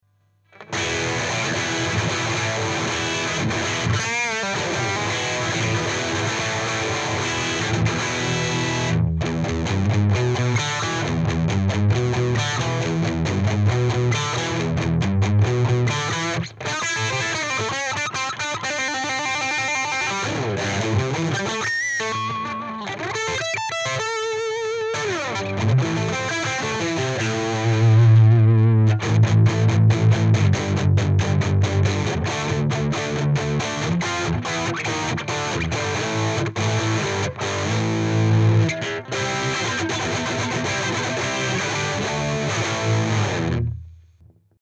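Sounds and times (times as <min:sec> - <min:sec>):
distortion: 0:00.0 - 0:44.5.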